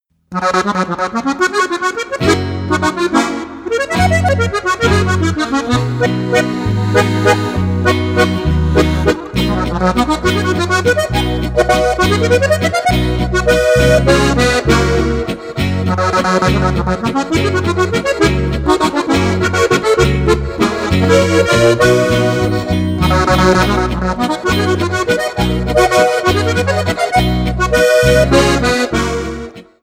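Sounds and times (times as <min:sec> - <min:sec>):
Styrian accordion playing a waltz: 0:00.4 - 0:29.8.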